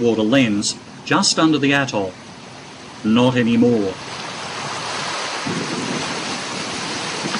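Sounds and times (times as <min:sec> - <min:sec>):
speech: 0:00.0 - 0:02.3, 0:03.0 - 0:04.2
dense rain hissing: 0:00.0 - 0:07.3
low thunder rumbling: 0:04.0 - 0:07.3.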